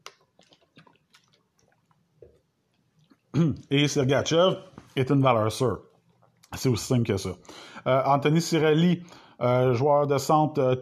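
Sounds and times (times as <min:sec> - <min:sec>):
person sipping and swallowing water: 0:00.0 - 0:03.7, 0:05.7 - 0:06.6
speech: 0:03.4 - 0:05.9, 0:06.5 - 0:10.8.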